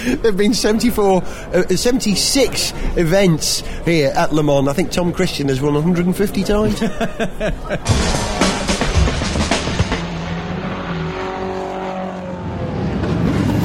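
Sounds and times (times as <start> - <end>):
speech: 0.0 - 8.3
laughter: 6.5 - 9.2
race car engines roaring at the start of a 24-hour race: 7.9 - 13.6.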